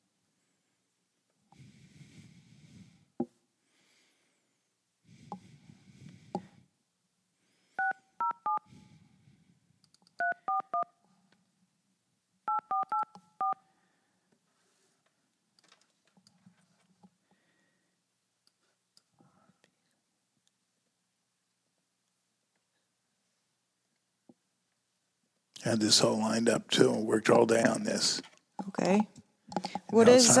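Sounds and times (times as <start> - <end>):
touch-tone telephone two-note keypad beeps: 7.8 - 8.6, 10.2 - 10.9, 12.5 - 13.6
speech: 25.6 - 30.3.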